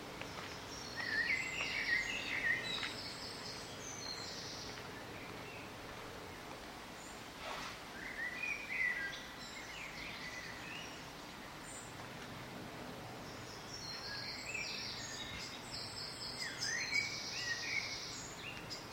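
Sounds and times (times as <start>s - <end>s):
birdsong: 0.1s - 12.2s, 13.0s - 18.9s.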